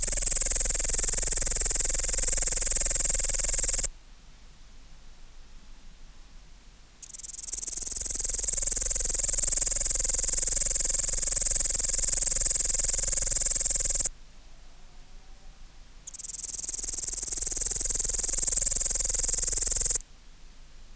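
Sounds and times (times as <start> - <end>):
upland green bush-cricket Tettigonia cantans stridulating: 0.0 - 3.9, 7.0 - 14.1, 16.0 - 20.0.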